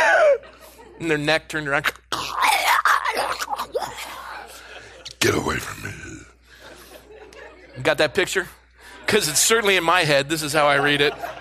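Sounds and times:
person imitating a demonic screech: 0.0 - 0.4, 2.1 - 4.5
laughter: 0.0 - 2.0, 3.1 - 11.3
speech: 1.0 - 2.4, 5.3 - 6.3, 7.8 - 11.3.

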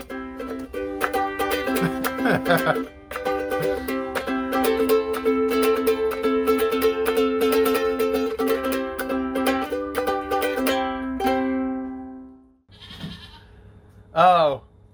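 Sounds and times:
plucked melodic run of notes: 0.0 - 12.5
laughter: 1.7 - 2.9
young goat bleating: 12.7 - 13.5.

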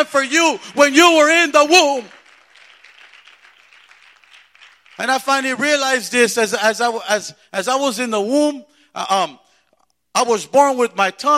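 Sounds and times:
speech: 0.0 - 2.2, 5.0 - 9.4, 10.2 - 11.3
audience applause: 0.8 - 5.4.

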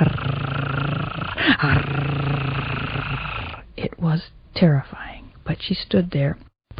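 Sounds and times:
lion purring: 0.0 - 3.7
speech: 1.4 - 2.1, 4.0 - 5.0, 5.6 - 6.7.

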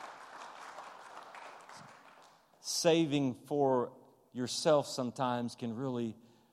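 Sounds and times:
crowd applauding: 0.0 - 2.5
speech: 2.7 - 6.3.

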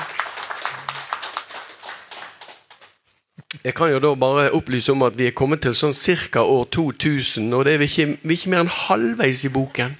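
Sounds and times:
small group hand clapping: 0.0 - 3.0
speech: 3.6 - 9.9.

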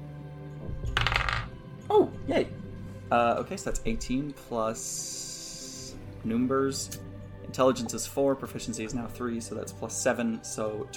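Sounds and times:
dice rolled for a check in a tabletop game: 1.0 - 1.5
speech: 1.9 - 5.3, 6.2 - 10.9.

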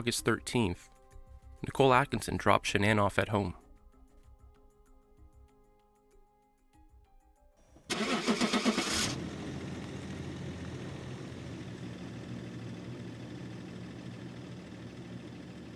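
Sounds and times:
speech: 0.0 - 0.9, 1.6 - 3.6
work truck engine cranking: 7.9 - 14.8
work truck engine idling with a low rumble: 7.9 - 15.7.

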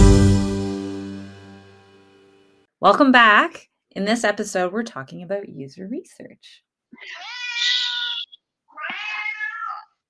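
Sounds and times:
speech: 2.8 - 7.4
cat meowing with a strained wailing tone: 7.0 - 10.0.

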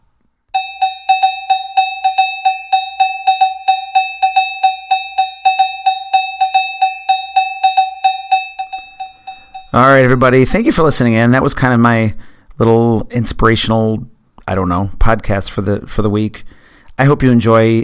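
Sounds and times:
cowbell struck in a steady, even rhythm: 0.6 - 10.2
speech: 9.8 - 17.8.

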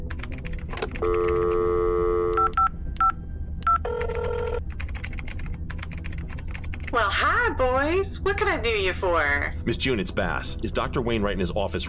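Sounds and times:
telephone touch-tone beeps of a number being dialed: 0.1 - 11.6
telephone ringing tone: 0.4 - 2.6, 3.7 - 7.0
speech: 8.0 - 11.8.

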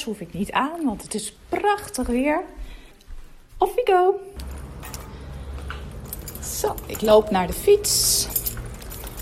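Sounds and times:
speech: 0.0 - 2.8, 3.6 - 4.4, 6.5 - 8.4
keys jangling as they are picked up: 4.4 - 9.1.

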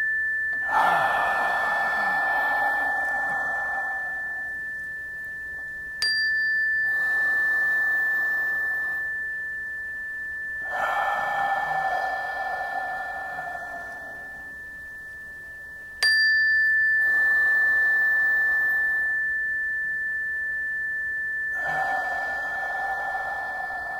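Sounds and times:
bright chime: 0.0 - 23.9
faint steady high tone: 0.0 - 23.9
deep cleansing breaths: 0.6 - 4.7, 6.8 - 9.2, 10.6 - 14.7, 17.0 - 19.2, 21.5 - 23.9.

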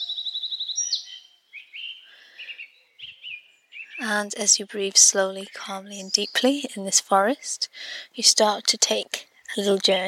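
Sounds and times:
birds trilling in a forest: 0.0 - 6.6
birds chirping in a forest: 0.0 - 10.0
speech: 4.0 - 10.0.

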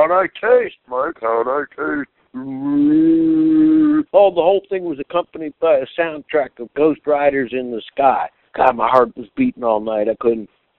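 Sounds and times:
speech: 0.0 - 3.4, 4.0 - 10.6
cow mooing: 2.4 - 4.0.

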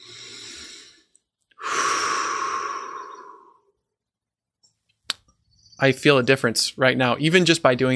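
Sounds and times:
deep breathing with soft airy inhale and long exhale: 0.0 - 3.8
speech: 5.8 - 7.9.

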